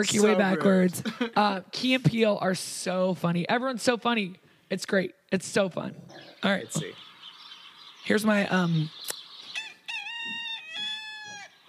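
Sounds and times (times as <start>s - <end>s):
speech: 0.0s - 7.1s, 8.0s - 9.1s
rooster crowing: 9.6s - 11.6s.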